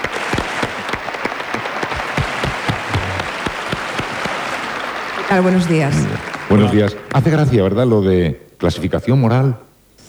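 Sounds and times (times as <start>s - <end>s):
audience applause welcoming radio presenters on a live radio programme: 0.0s - 7.5s
speech: 5.3s - 9.6s.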